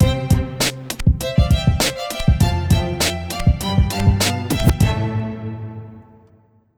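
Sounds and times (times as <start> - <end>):
light staccato cello sting: 0.0 - 6.5.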